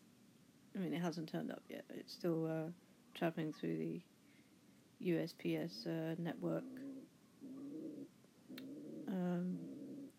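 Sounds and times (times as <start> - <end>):
speech: 0.8 - 4.1, 5.0 - 6.8
tame pigeon cooing indoors: 5.8 - 10.1.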